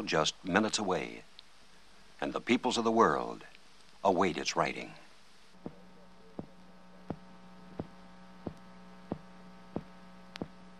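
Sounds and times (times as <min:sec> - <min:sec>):
speech: 0:00.0 - 0:01.3, 0:02.2 - 0:05.0
steady electrical hum: 0:00.0 - 0:10.7
human heartbeat transmitted from a sealed spacecraft during flight: 0:05.6 - 0:10.6.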